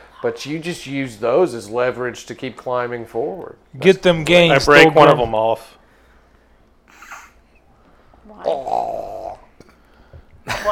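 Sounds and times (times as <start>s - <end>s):
speech: 0.2s - 5.8s
person imitating a creature burping with their voice: 8.4s - 9.8s.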